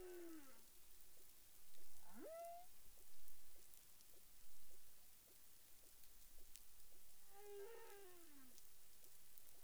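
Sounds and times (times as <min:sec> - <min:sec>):
humpback whale calls in the Caribbean: 0:02.1 - 0:02.7, 0:07.3 - 0:08.5.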